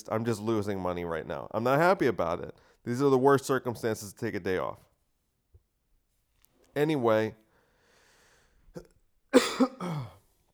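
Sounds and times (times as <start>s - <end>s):
speech: 0.0s - 4.9s, 6.8s - 7.4s, 8.8s - 10.2s
person coughing: 8.8s - 10.2s.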